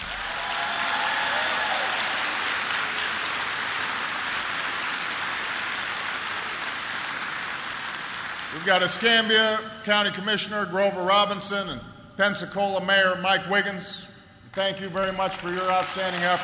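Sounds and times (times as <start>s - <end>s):
faint cheers: 0.0s - 2.6s
large crowd applauding: 0.0s - 9.3s, 14.6s - 16.4s
speech: 8.6s - 16.4s.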